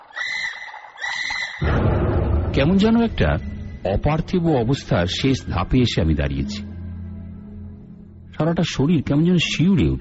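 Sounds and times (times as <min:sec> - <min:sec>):
owl screeching harshly outside: 0:00.0 - 0:01.7
speech: 0:02.6 - 0:06.7, 0:08.4 - 0:09.9.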